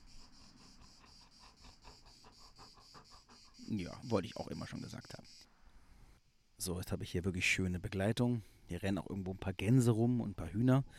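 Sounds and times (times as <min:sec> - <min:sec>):
Golden Retriever farm dog panting: 0:00.0 - 0:04.6
crickets chirping: 0:00.0 - 0:06.5
speech: 0:03.7 - 0:05.6, 0:06.6 - 0:10.9.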